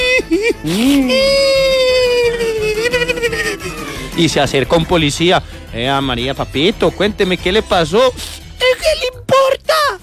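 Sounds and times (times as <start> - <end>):
voice imitating a small child crying: 0.0 - 3.8, 8.0 - 10.0
laughter: 0.0 - 10.0
speech: 0.6 - 1.2, 4.2 - 8.4.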